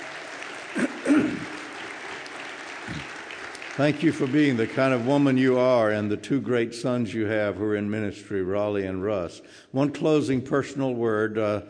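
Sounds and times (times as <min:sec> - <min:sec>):
audience applauding: 0:00.0 - 0:05.9
speech: 0:03.8 - 0:11.6.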